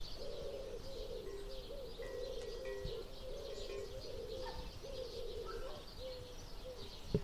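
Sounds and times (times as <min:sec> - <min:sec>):
common wood pigeon cooing: 0:00.0 - 0:07.0
faint chirps of other birds: 0:00.0 - 0:07.2.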